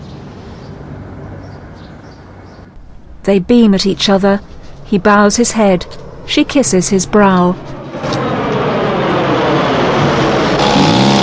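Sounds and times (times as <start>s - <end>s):
road rumble of small vintage car: 0.0s - 11.2s
speech: 3.2s - 7.7s
small vintage open-topped car engine driving through city: 5.7s - 11.2s.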